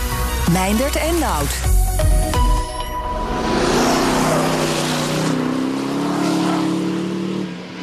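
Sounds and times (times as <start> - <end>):
speech: 0.5 - 2.4
Aston Martin DBX SUV engine drone as the SUV pulls away: 2.4 - 7.8.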